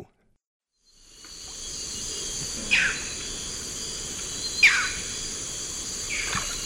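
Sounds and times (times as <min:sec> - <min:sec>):
Striated Heron calling in the Eastern Lowlands of South America: 0:01.6 - 0:06.6.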